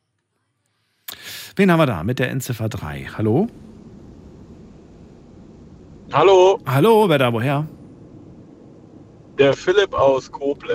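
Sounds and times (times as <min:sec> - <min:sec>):
speech: 0:01.6 - 0:03.7, 0:06.1 - 0:07.8, 0:09.4 - 0:10.7
car interior road and engine noise: 0:02.6 - 0:10.7.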